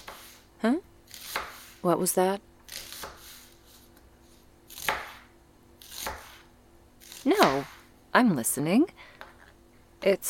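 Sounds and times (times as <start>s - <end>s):
knife chopping peppers while cooking: 0.0s - 0.4s, 1.1s - 1.8s, 2.7s - 3.6s, 4.7s - 7.8s
faint steady hum: 0.0s - 10.2s
speech: 0.6s - 0.8s, 1.8s - 2.5s, 8.2s - 9.1s, 10.0s - 10.2s.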